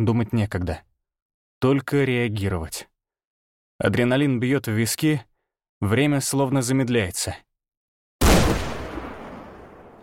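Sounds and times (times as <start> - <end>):
speech: 0.0 - 0.9, 1.6 - 2.9, 3.8 - 7.5
shotgun firing a single shot: 8.2 - 10.0.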